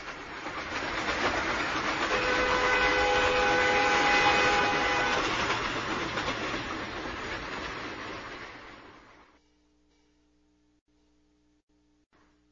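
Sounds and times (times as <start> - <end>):
train rumbling along rails with high whining tones: 0.0 - 9.4.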